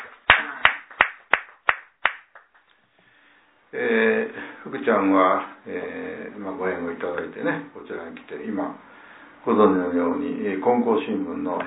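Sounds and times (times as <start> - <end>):
hands clapping at a gathering to celebrate two birthdays: 0.0 - 2.8
speech: 3.8 - 11.6.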